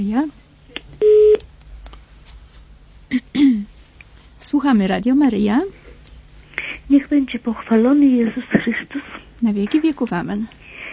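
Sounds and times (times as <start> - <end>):
speech: 0.0 - 0.4, 4.5 - 5.8, 6.9 - 10.6
telephone line tone as a call connects to a radio call-in program: 1.0 - 1.4.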